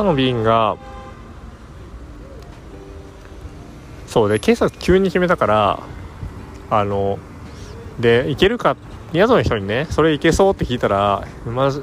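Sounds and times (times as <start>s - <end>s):
speech: 0.0s - 0.9s, 4.1s - 5.9s, 6.7s - 7.3s, 8.0s - 11.8s
car horns honking: 0.0s - 1.6s
engines and traffic rumble at a bus terminal in Dar es Salaam: 0.0s - 11.8s.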